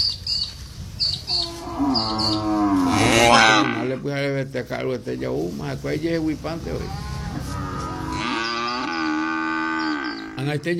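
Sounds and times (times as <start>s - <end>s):
cow mooing: 1.3s - 4.0s, 6.8s - 10.6s
speech: 3.9s - 7.8s, 10.4s - 10.7s.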